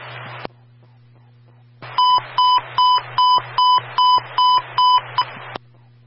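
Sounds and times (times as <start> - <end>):
radio static bursts: 0.0 - 0.5, 1.8 - 6.0
buzzing, hissy radio channel: 0.0 - 6.0
fire control radio emergency transmission test tone beeps: 2.0 - 5.4.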